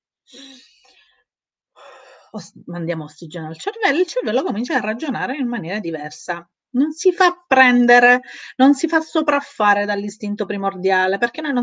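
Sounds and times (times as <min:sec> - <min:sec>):
speech: 0:00.3 - 0:01.0, 0:02.3 - 0:11.6
loud deep airy breaths: 0:00.3 - 0:02.4.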